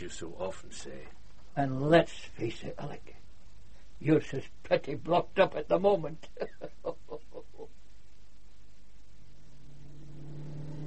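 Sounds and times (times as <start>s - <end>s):
speech: 0.0s - 3.2s, 4.0s - 7.8s
motor car engine revving: 9.6s - 10.8s.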